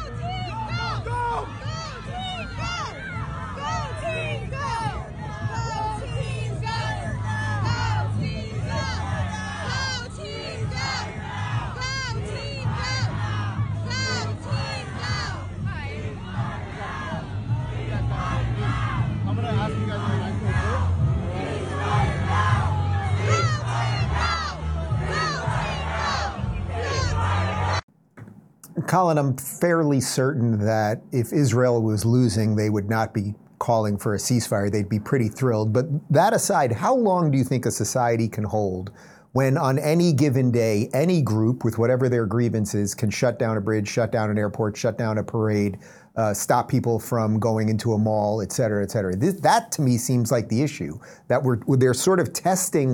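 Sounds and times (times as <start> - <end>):
large outdoor crowd of protesters chanting and shouting: 0.0 - 28.3
speech: 28.9 - 52.9.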